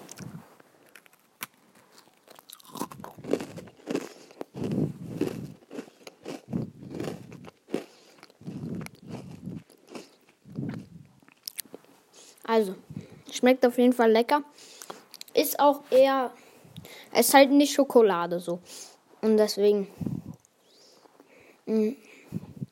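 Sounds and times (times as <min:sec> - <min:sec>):
crunchy bites and chewing on an Oreo cookie with cream filling: 0:00.0 - 0:11.8
speech: 0:12.6 - 0:14.7, 0:15.6 - 0:16.4, 0:17.2 - 0:20.1, 0:21.8 - 0:22.0.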